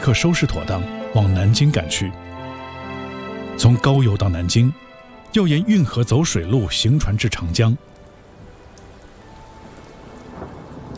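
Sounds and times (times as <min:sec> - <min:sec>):
speech: 0:00.0 - 0:02.4, 0:03.6 - 0:07.9
heavy rain pouring: 0:00.0 - 0:10.9
thunder rumbling: 0:08.2 - 0:10.9.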